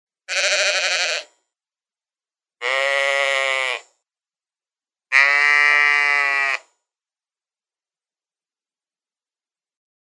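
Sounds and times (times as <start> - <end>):
sheep bleating: 0.3 - 1.3, 2.6 - 3.9, 5.1 - 6.7.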